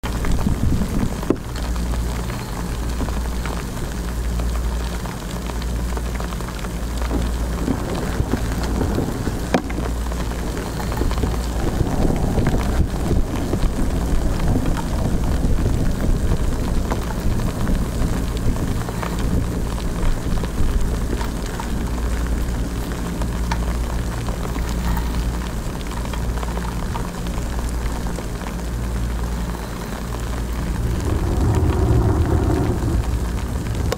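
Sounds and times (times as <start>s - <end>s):
rain as a phone ringtone: 0.0s - 33.9s.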